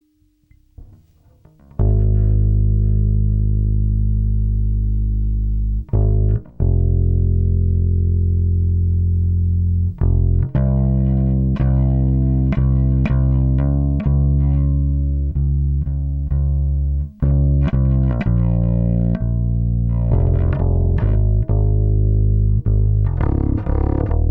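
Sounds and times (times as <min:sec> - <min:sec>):
bass tone: 0:00.0 - 0:24.3.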